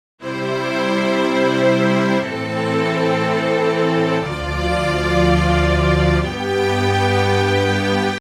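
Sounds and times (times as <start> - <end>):
strings: 0.2 - 8.2.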